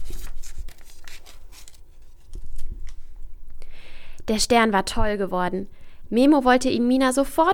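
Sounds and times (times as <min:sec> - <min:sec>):
scissors cutting paper: 0:00.0 - 0:03.0
speech: 0:04.3 - 0:07.5.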